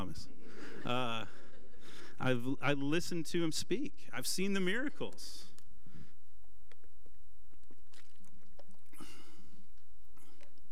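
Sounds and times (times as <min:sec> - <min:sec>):
speech: 0:00.1 - 0:01.4, 0:02.2 - 0:05.5
person drinking water: 0:06.4 - 0:10.6.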